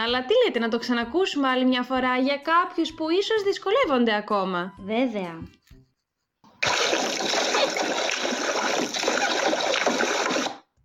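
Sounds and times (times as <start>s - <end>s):
speech: 0.0s - 5.6s
water splashing: 6.6s - 10.6s.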